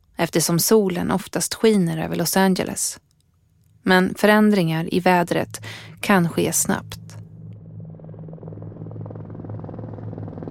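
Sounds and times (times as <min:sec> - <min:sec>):
speech: 0:00.2 - 0:03.1, 0:03.8 - 0:07.0
helicopter flying overhead: 0:04.9 - 0:10.4.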